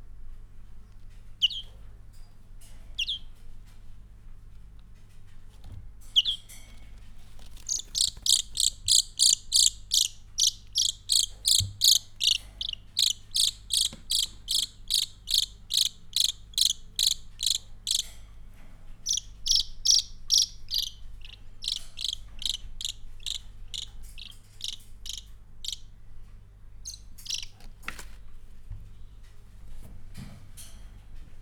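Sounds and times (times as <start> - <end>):
European greenfinch singing in a zoo: 1.4 - 1.7, 6.2 - 6.4, 7.5 - 18.1, 19.0 - 25.9, 26.8 - 27.6.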